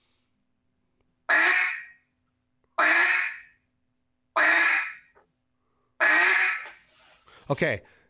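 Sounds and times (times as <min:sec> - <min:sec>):
quacks blown on a duck call: 0:01.3 - 0:02.0, 0:02.8 - 0:03.5, 0:04.4 - 0:05.1, 0:06.0 - 0:06.8
speech: 0:07.5 - 0:08.0.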